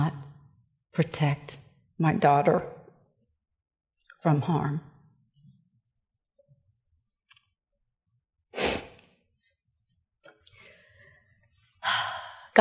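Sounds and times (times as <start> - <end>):
speech: 1.0 - 2.8, 4.2 - 4.9
sneeze: 8.6 - 9.0
faint breathing: 10.5 - 12.5.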